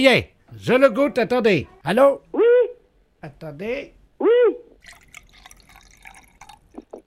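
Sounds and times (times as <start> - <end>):
speech: 0.0 - 2.2, 3.2 - 5.0
wine pouring from a bottle: 4.8 - 7.0.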